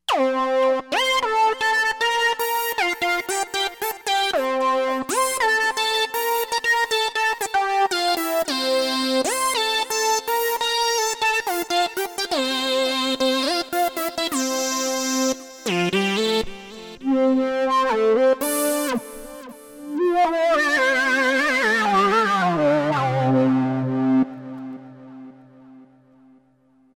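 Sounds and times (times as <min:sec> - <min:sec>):
Novation XioSynth 25 synthesizer: 0:00.0 - 0:26.6.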